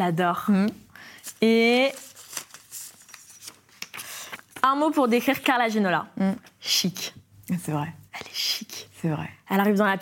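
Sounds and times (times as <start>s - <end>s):
speech: 0.0s - 2.1s, 4.6s - 9.9s
small slip of paper rustling as drawn from a cap and unfolded: 1.2s - 4.7s.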